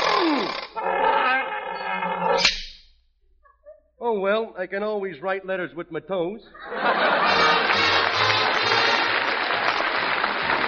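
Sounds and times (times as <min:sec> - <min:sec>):
lion roaring: 0:00.0 - 0:02.4
speech: 0:04.2 - 0:07.9
laughter: 0:06.6 - 0:10.6.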